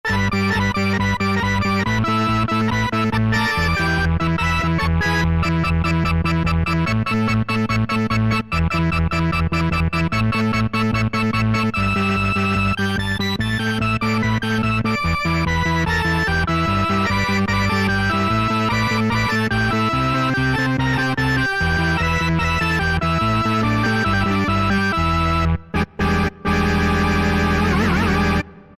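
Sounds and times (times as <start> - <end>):
Yamaha EX5R synthesizer organ preset, fuzzy: 0.1 - 28.7.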